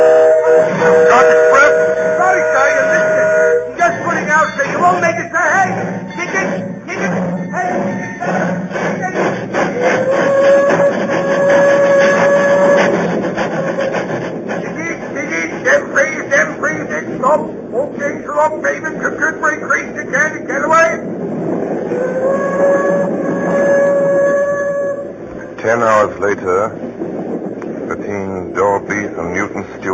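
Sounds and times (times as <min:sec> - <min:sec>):
train whistle blasts: 0:00.0 - 0:04.6, 0:07.7 - 0:14.0, 0:21.9 - 0:25.6
indistinct voices: 0:00.0 - 0:26.9
train rumbling and chugging: 0:00.0 - 0:29.9.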